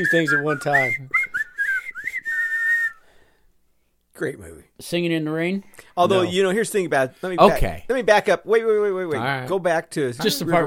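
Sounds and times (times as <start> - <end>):
speech: 0.0 - 1.2, 4.2 - 10.6
people whistling a march tune: 0.0 - 3.1.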